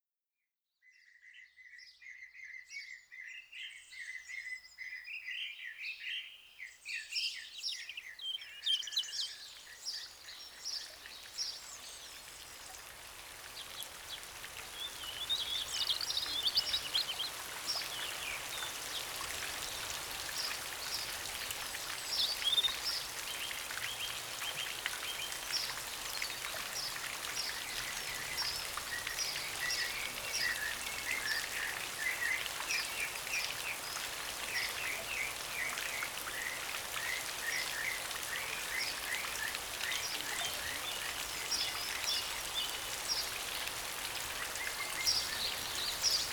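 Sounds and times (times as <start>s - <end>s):
songbirds: 0.8s - 46.3s
rain shower in a deep forest: 9.7s - 46.3s.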